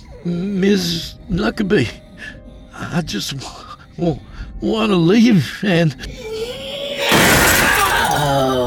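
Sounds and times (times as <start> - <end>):
speech: 0.2 - 6.3
glass window debris falling: 7.1 - 8.5
glass windows shattering and bursting outwards: 7.1 - 8.5.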